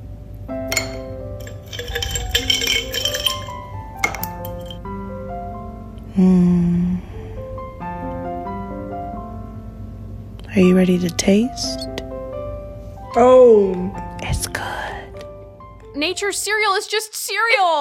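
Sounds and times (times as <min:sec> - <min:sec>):
ice cubes clinking in a bowl of coconut water with fruit: 0:00.7 - 0:04.8
speech: 0:06.2 - 0:06.7, 0:10.6 - 0:11.9, 0:13.2 - 0:14.6, 0:16.0 - 0:17.7.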